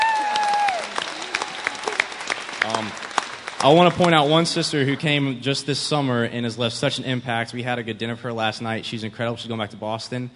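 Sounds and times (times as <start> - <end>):
scattered cheers and voices: 0.0 - 3.0
audience applause: 0.0 - 5.2
speech: 3.6 - 10.3.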